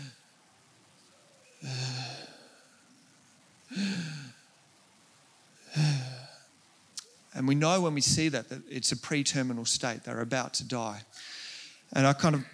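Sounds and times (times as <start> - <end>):
person imitating agonal gasping breathing: 1.6 - 2.8, 3.7 - 4.5, 5.6 - 6.5, 11.2 - 11.9
speech: 7.4 - 12.5.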